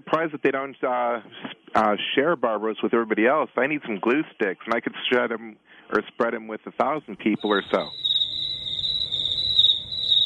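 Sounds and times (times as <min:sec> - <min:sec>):
speech: 0:00.1 - 0:08.1
crickets chirping in a steady high-pitched trill: 0:07.3 - 0:10.2.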